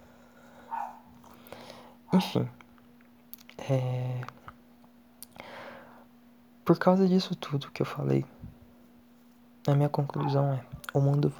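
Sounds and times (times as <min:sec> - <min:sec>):
steady low electrical hum: 0:00.0 - 0:11.3
single short faint dog bark: 0:00.7 - 0:01.1, 0:02.1 - 0:02.4, 0:10.2 - 0:10.7
speech: 0:02.1 - 0:02.6, 0:03.7 - 0:04.4, 0:06.7 - 0:08.4, 0:09.6 - 0:11.3.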